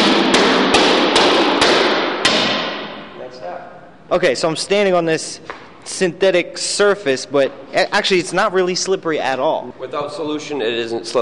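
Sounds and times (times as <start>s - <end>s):
hammer strikes on plastic panels: 0.0s - 3.1s
steady broadband hiss: 1.8s - 11.2s
speech: 4.1s - 11.2s.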